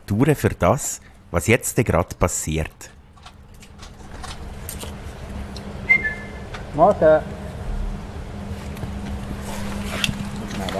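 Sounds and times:
outdoor hum in front of a zoo vivarium: 0.0s - 10.7s
speech: 0.1s - 3.0s, 6.8s - 7.4s
zookeeper whistling to call king penguins: 5.9s - 6.4s.

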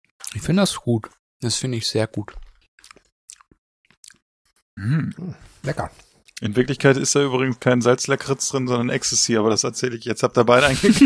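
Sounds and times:
speech: 0.4s - 2.4s, 4.8s - 11.0s
wet sticky smacking while chewing licorice candy: 2.6s - 4.2s.

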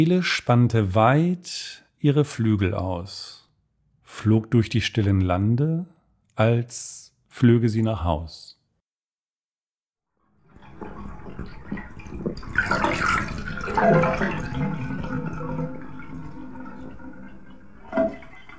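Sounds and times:
speech: 0.0s - 3.4s, 4.1s - 8.5s, 13.8s - 14.7s
water draining from a bathtub: 10.2s - 18.5s.

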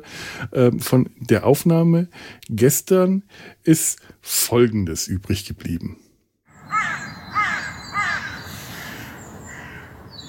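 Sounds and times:
speech: 0.0s - 6.0s
crows cawing: 6.6s - 10.2s.

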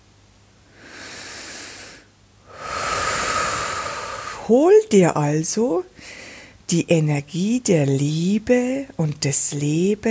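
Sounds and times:
airy deep breath in and out: 0.6s - 4.5s, 5.9s - 6.6s
speech: 4.5s - 10.0s.

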